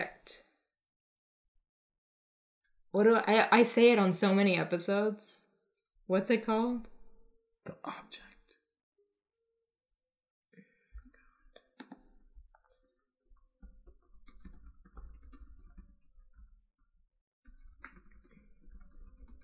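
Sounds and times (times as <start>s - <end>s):
speech: 2.9s - 5.4s, 6.1s - 6.9s, 7.6s - 8.3s
rapid frantic typing on a keyboard: 13.4s - 19.4s.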